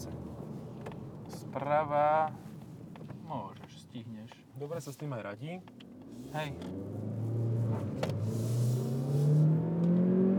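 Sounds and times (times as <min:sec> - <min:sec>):
speech: 0:01.5 - 0:02.5, 0:03.3 - 0:07.0
supercharged car engine revving under acceleration: 0:05.9 - 0:10.3.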